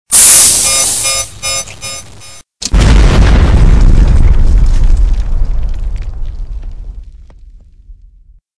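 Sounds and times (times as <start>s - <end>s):
explosion finale: 2.6s - 8.4s.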